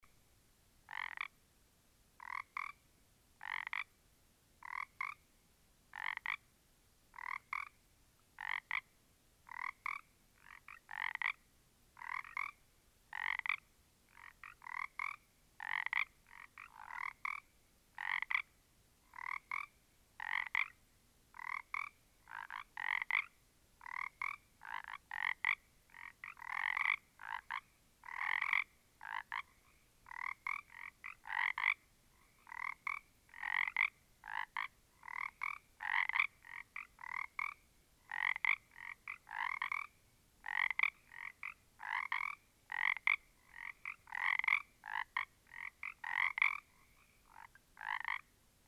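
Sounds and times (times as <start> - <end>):
small group of frogs: 0.9 - 1.4, 2.2 - 2.8, 3.4 - 3.9, 4.6 - 5.2, 5.9 - 6.5, 7.1 - 7.8, 8.4 - 8.9, 9.5 - 11.4, 12.0 - 48.6.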